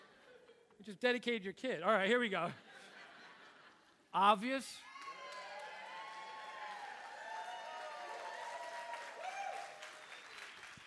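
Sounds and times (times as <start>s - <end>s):
speech: 0.8s - 2.9s, 4.1s - 4.9s
people whooping and cheering: 4.8s - 10.8s
audience clapping: 4.9s - 10.8s.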